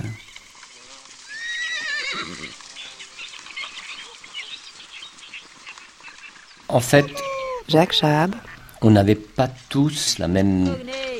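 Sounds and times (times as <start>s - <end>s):
busy hissy outdoor background: 0.0s - 11.1s
horse letting out a loud quavering whinny: 1.2s - 2.7s, 6.8s - 7.7s
horse snorting: 1.4s - 2.8s
speech: 6.7s - 11.0s.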